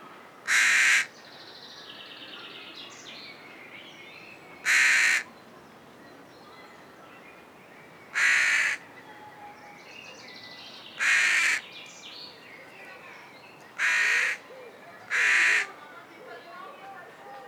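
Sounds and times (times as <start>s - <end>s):
carrion crow Corvus corone cawing: 0.5s - 1.1s, 4.6s - 5.3s, 8.2s - 8.8s, 11.0s - 11.6s, 13.8s - 14.4s, 15.1s - 15.7s.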